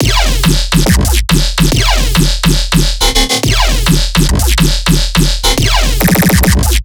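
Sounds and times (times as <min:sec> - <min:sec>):
riddim dubstep bass loop: 0:00.0 - 0:06.8.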